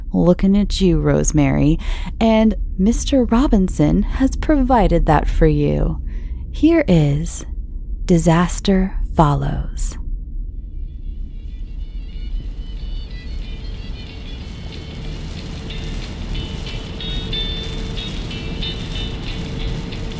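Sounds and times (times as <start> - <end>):
speech: 0.1 - 7.5, 8.1 - 10.0
truck engine rumbling while driving through mud in stormy woods: 11.0 - 20.1
heavy rain on a truck windshield: 12.0 - 20.1.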